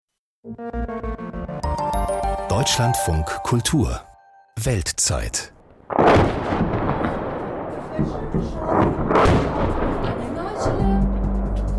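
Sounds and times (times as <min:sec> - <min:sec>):
speech: 0:00.4 - 0:01.3, 0:02.6 - 0:06.4, 0:08.0 - 0:11.1
bomb explosions during an Azerbaijani attack on Armenia: 0:05.6 - 0:11.7.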